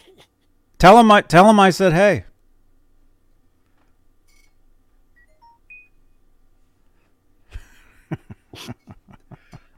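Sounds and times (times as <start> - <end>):
speech: 0.8 - 2.3, 8.6 - 8.8
phone beeping with incoming messages: 5.2 - 6.2.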